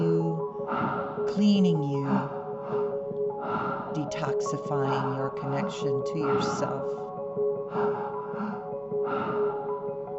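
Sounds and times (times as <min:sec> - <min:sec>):
deep connected breaths during a guided breathing exercise: 0:00.6 - 0:01.4, 0:02.1 - 0:04.1, 0:07.6 - 0:10.1
speech: 0:01.3 - 0:02.4, 0:04.0 - 0:08.2.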